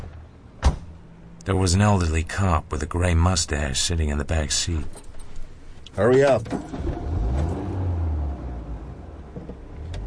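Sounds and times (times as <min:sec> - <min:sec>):
speech: 0:01.5 - 0:05.1, 0:06.0 - 0:07.2
car engine revving and pulling away: 0:06.4 - 0:10.0.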